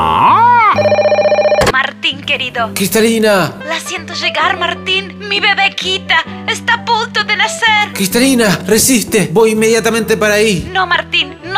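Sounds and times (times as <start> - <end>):
telephone ringing with an incoming call: 0.8 - 1.8
speech: 2.4 - 11.5.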